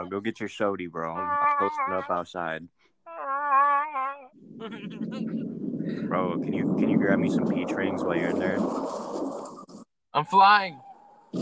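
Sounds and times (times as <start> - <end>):
speech: 0.0 - 2.9, 4.6 - 9.3, 10.2 - 11.4
wind buffeting against the microphone outdoors: 4.4 - 9.8.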